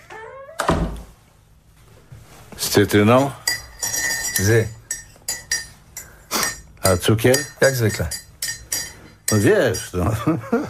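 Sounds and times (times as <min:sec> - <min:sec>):
door creak sound effect for a staged scene: 0:00.0 - 0:01.1
speech: 0:02.7 - 0:03.4, 0:04.4 - 0:04.8, 0:06.9 - 0:08.2, 0:09.3 - 0:10.6.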